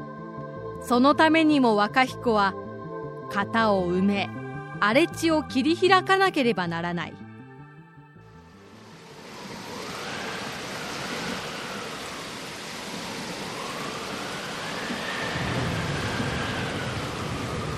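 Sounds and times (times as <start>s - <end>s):
speech: 0.8s - 2.6s, 3.3s - 7.2s
heavy rain of the rainy season: 8.5s - 17.7s
deep rumble of thunder: 8.9s - 17.7s.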